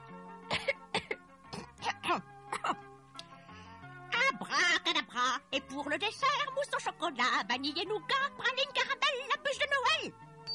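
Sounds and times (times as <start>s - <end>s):
woman clearing her throat: 0.5s - 2.8s
speech: 5.2s - 10.2s.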